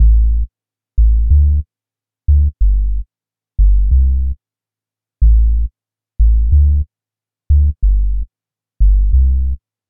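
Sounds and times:
sub bass loop layer in A minor: 0.0s - 1.6s, 2.3s - 3.0s, 3.6s - 4.4s, 5.2s - 6.8s, 7.5s - 9.6s.

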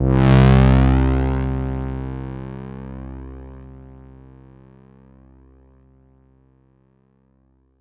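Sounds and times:
synth bass note C2: 0.0s - 4.5s.

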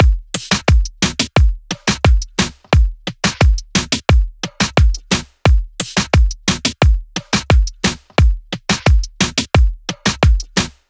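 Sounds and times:
full drum loop: 0.0s - 10.8s.

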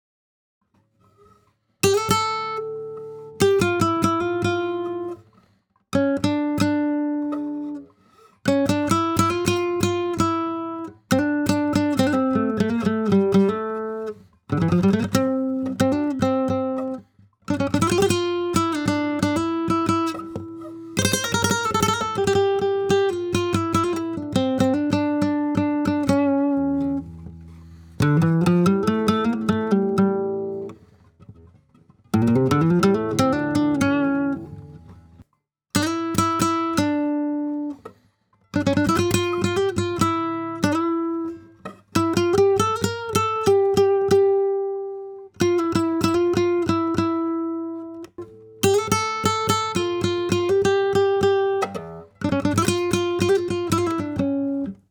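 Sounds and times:
dry flamenco guitar playing in E minor: 1.8s - 5.2s, 6.0s - 7.8s, 8.5s - 35.2s, 35.8s - 37.8s, 38.6s - 54.8s.

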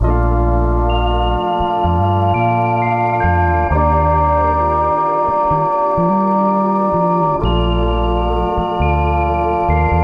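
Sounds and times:
melodic music loop in A major: 0.0s - 10.0s.

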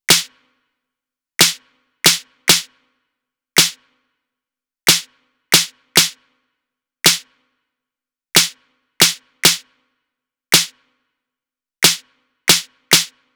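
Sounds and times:
snare drum: 0.1s - 0.4s, 1.4s - 2.7s, 3.6s - 3.8s, 4.9s - 6.2s, 7.1s - 7.3s, 8.4s - 9.7s, 10.6s - 10.8s, 11.8s - 13.2s.

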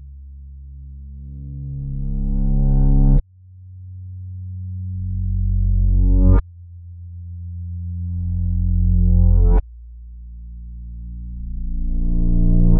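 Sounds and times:
reversed bass loop at 75 BPM: 1.1s - 3.2s, 5.6s - 6.4s, 8.0s - 9.6s, 11.0s - 12.7s.

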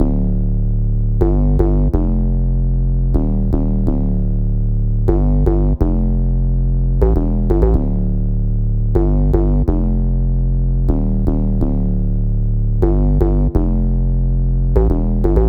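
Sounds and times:
bass line in D minor: 0.0s - 15.4s.

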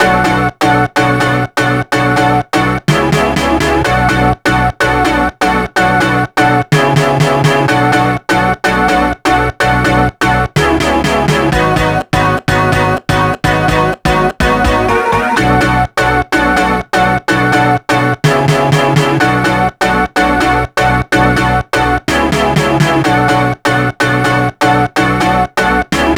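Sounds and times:
dry music loop in F: 0.0s - 26.1s.

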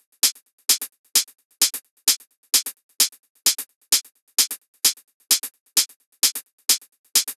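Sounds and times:
dry drum top loop: 0.0s - 7.3s.

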